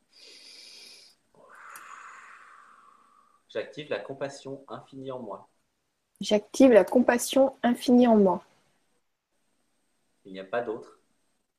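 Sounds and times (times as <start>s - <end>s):
long airy inhale and rushing exhale: 0.0s - 3.5s
speech: 3.5s - 5.5s, 6.2s - 8.5s, 10.3s - 11.0s.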